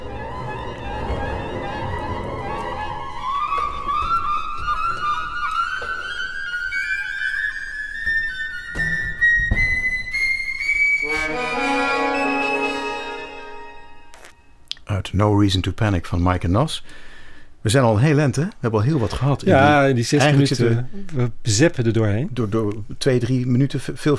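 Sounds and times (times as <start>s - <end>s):
soft orchestral accompaniment: 0.0s - 6.7s, 10.2s - 14.6s
flutes playing a sustained rising line: 0.0s - 14.6s
speech: 15.2s - 24.1s.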